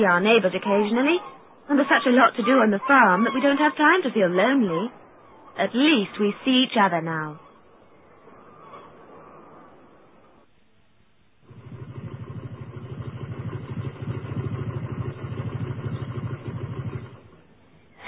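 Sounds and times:
speech: 0.0 - 5.0, 5.6 - 7.4
motorcycle engine idling: 11.4 - 17.6.

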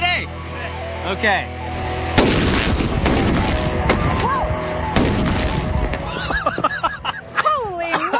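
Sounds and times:
speech: 1.0 - 2.4
gas-filled bag exploding: 2.1 - 4.3, 4.9 - 6.1
laughter: 6.0 - 8.1.

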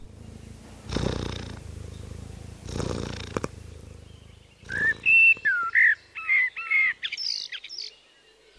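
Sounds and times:
cat purring: 0.0 - 6.0
bird chirps and whistles: 4.6 - 7.9.

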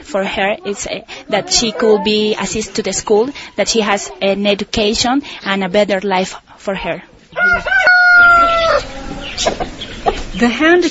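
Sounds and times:
speech: 0.1 - 7.8, 9.4 - 9.8, 10.4 - 10.8
chickens clucking in a courtyard: 0.2 - 5.4, 7.2 - 10.8
rooster crowing in a sunny courtyard: 7.4 - 9.4.

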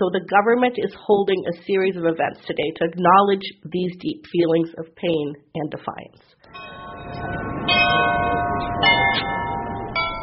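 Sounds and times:
speech: 0.0 - 8.8
large cathedral church bells ringing: 6.5 - 10.2.

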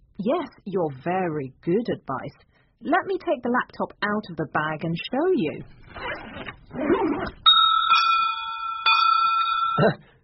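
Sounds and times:
speech: 0.2 - 7.4, 9.8 - 10.1
bells ringing with clear sustained metallic tones: 7.5 - 10.0.

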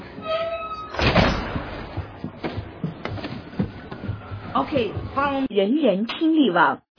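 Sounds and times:
door opening with a loud rattling clunk: 0.2 - 2.6
speech: 4.6 - 6.8.

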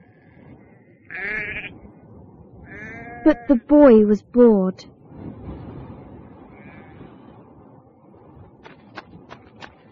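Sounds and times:
single sheep bleating: 0.0 - 1.8, 2.7 - 3.7, 6.5 - 7.0
speech: 1.1 - 1.8, 3.2 - 5.0.

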